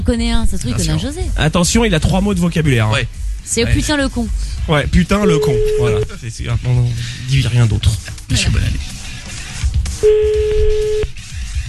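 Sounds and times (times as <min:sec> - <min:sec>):
speech: 0:00.0 - 0:09.0, 0:10.0 - 0:10.8
ringback tone on an outgoing telephone call: 0:05.3 - 0:06.1, 0:10.0 - 0:11.1.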